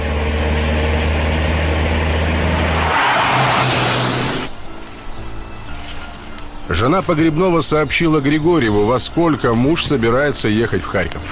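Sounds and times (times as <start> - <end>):
Lada Zhiguli car engine driven hard on a country road: 0.0 - 4.6
speech: 6.7 - 11.3.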